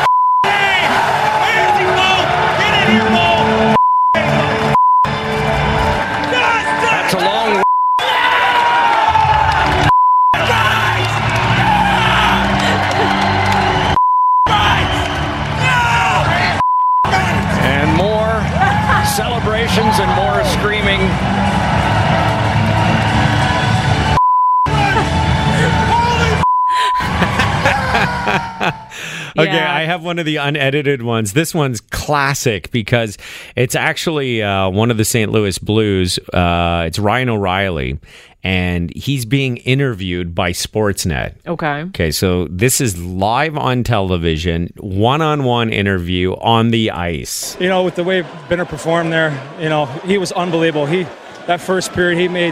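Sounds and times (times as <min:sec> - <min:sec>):
censor beeps of steady 1 kHz tones: 0:00.0 - 0:00.5, 0:07.6 - 0:08.0, 0:09.9 - 0:10.4, 0:14.0 - 0:14.5, 0:16.6 - 0:17.1, 0:24.2 - 0:24.7
celebrating hockey players shouting and cheering: 0:00.0 - 0:29.9
laughter: 0:12.1 - 0:13.9, 0:24.7 - 0:29.9, 0:47.5 - 0:52.5
speech: 0:30.1 - 0:52.5.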